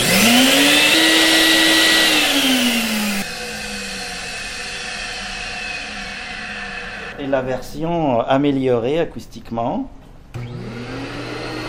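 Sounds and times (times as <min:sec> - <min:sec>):
central vacuum cleaner installed in a basement, original not acoustically improved version, roaring: 0:00.0 - 0:07.3, 0:10.3 - 0:11.6
speech: 0:07.3 - 0:10.7.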